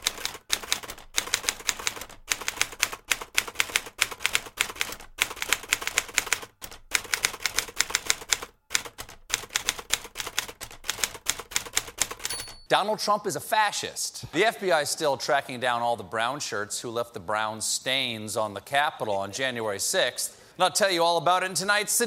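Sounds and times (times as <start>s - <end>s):
rapid typewriter typing: 0.0s - 12.7s
speech: 12.7s - 22.0s.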